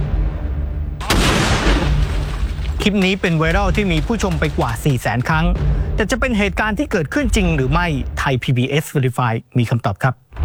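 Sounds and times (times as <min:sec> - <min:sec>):
grenade explosion blast: 0:01.0 - 0:04.2
gunfire: 0:01.0 - 0:05.4
speech: 0:02.8 - 0:10.2.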